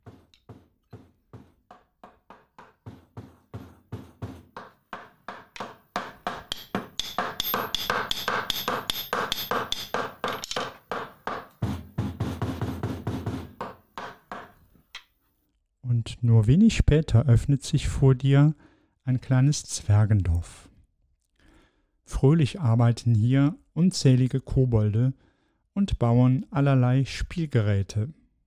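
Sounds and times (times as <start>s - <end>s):
hammers striking nails: 0.0s - 14.6s
speech: 16.2s - 20.7s, 22.1s - 28.2s.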